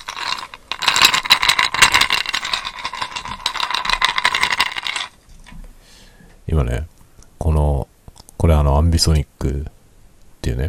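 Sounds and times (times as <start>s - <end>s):
ice cubes rattling and clinking in a container: 0.0s - 5.2s
speech: 6.5s - 7.9s, 8.6s - 9.8s, 10.5s - 10.6s.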